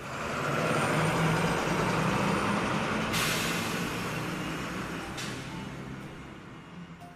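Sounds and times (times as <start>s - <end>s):
large bus engine idling: 0.0s - 7.1s
bus air brakes hissing: 3.0s - 5.6s.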